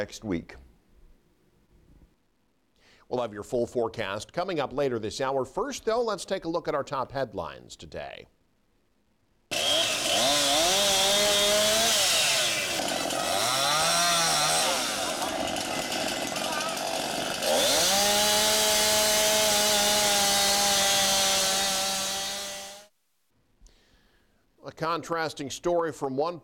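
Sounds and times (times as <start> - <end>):
speech: 0.0 - 0.6, 3.1 - 8.4, 24.8 - 26.4
chainsaw cutting wind-felled trees at full throttle in Kearney: 9.5 - 22.9.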